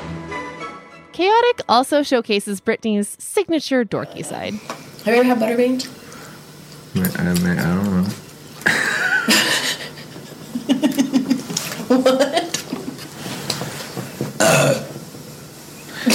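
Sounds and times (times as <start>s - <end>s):
speech: 1.2s - 6.0s, 6.9s - 9.6s, 11.9s - 12.4s
laughter: 8.6s - 13.0s
person burping: 14.4s - 15.0s.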